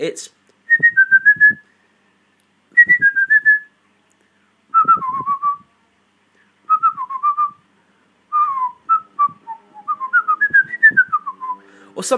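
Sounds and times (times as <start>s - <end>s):
speech: 0.0s - 1.0s, 12.0s - 12.1s
person whistling a short bouncy video game tune: 0.7s - 1.6s, 2.8s - 3.7s, 4.7s - 5.7s, 6.7s - 7.6s, 8.3s - 11.6s.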